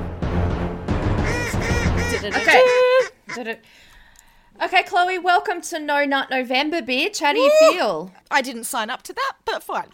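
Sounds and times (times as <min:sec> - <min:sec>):
human voice imitating duck quacks: 0:01.3 - 0:03.6
speech: 0:02.2 - 0:02.8, 0:03.4 - 0:03.9, 0:04.6 - 0:09.9.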